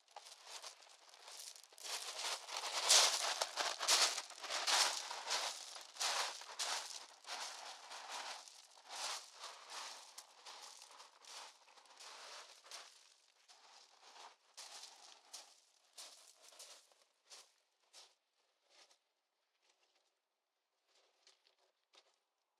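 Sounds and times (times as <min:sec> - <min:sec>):
footsteps: 0:00.2 - 0:10.6.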